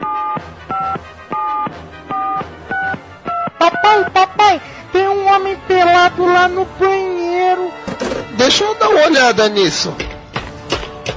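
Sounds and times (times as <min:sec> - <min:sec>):
phone keypad tones from a telephone number being dialed: 0:00.0 - 0:04.1
speech: 0:03.8 - 0:07.7, 0:08.4 - 0:10.1.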